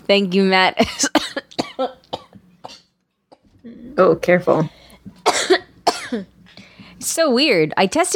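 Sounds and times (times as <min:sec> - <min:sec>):
speech: 0:00.1 - 0:02.0, 0:04.0 - 0:04.8, 0:06.1 - 0:06.3, 0:07.0 - 0:08.1
harsh coughs from a person with a cough lingering a month after illness: 0:00.8 - 0:03.5, 0:05.2 - 0:06.3.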